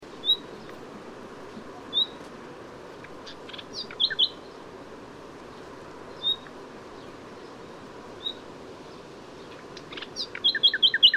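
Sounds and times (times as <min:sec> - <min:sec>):
broad rushing background noise: 0:00.0 - 0:11.1
common nightingale Luscinia megarhynchos whistling and chattering: 0:03.8 - 0:04.4, 0:09.9 - 0:11.1.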